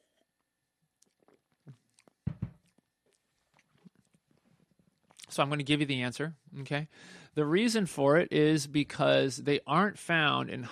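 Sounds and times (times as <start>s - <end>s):
person sipping coffee: 1.0s - 5.3s
speech: 5.4s - 10.7s.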